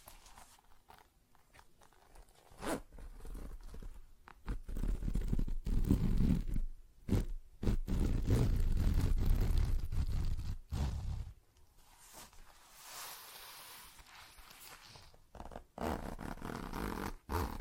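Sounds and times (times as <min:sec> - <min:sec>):
zipper: 0:00.0 - 0:11.4, 0:12.2 - 0:17.6.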